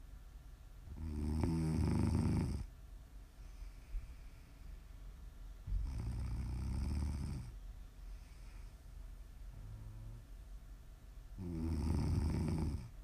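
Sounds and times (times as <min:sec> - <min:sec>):
faint steady hiss: 0:00.0 - 0:13.0
heavy snoring with deep rattling rumble: 0:00.9 - 0:02.7, 0:05.7 - 0:07.5, 0:11.4 - 0:13.0.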